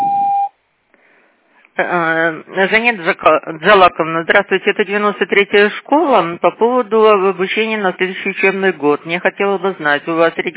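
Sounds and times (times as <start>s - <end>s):
single electronic beep of a voicemail system: 0.0s - 0.5s
speech: 1.8s - 10.5s.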